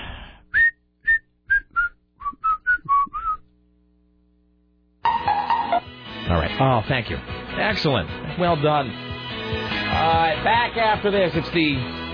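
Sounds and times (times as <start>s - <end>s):
person whistling a short bouncy tune: 0.5s - 3.4s
speech: 6.3s - 12.0s.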